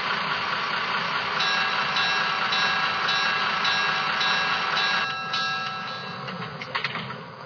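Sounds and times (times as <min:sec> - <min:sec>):
passenger train rumble and electric hum at a station: 0:00.0 - 0:07.4
brief train clanks: 0:02.0 - 0:07.3.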